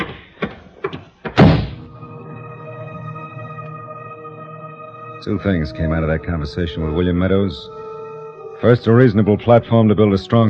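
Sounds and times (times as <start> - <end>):
door slamming shut: 1.3 - 1.9
speech: 5.2 - 7.9, 8.6 - 10.4.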